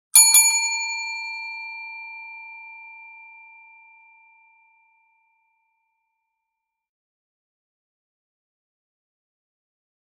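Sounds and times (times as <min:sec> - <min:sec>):
doorbell ringing twice in a row: 0:00.2 - 0:02.2.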